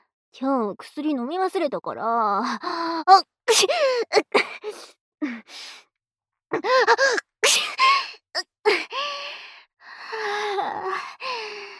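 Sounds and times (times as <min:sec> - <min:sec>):
speech: 0:00.4 - 0:05.8, 0:06.5 - 0:09.2
woman sneezing: 0:03.5 - 0:04.9, 0:07.0 - 0:08.0
woman's breathy gasping inhales: 0:08.8 - 0:11.7.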